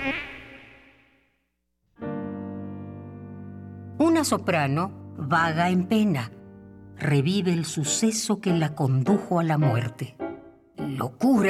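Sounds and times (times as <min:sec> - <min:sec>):
mosquito whining buzz in a radio advertisement: 0:00.0 - 0:01.4
speech: 0:00.1 - 0:00.3, 0:04.1 - 0:06.4, 0:07.0 - 0:10.2, 0:10.8 - 0:11.4.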